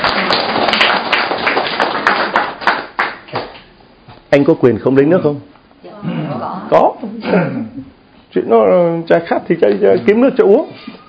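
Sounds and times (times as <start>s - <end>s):
audience applauding: 0.0s - 3.6s
sharp loud claps: 0.0s - 3.7s
speech: 4.3s - 7.6s, 8.4s - 10.9s.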